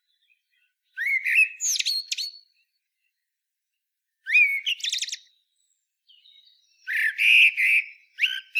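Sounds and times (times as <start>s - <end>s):
common blackbird Turdus merula singing fluting warbled phrases: 0.1s - 2.7s, 4.3s - 8.5s.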